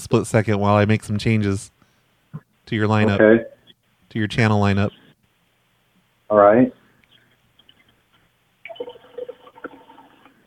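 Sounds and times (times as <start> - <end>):
speech: 0.0 - 5.0, 6.3 - 6.8
water running from a faucet into a glass: 8.6 - 10.4.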